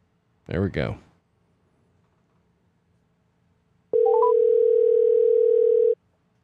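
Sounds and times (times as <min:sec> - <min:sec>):
rising telephone line beeps during an outgoing call: 0:04.0 - 0:06.0.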